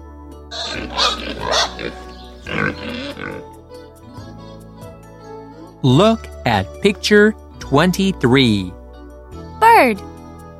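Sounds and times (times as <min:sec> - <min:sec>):
big pink pig oinking: 0:00.5 - 0:03.5
speech: 0:00.5 - 0:03.6, 0:05.8 - 0:08.8, 0:09.8 - 0:10.1.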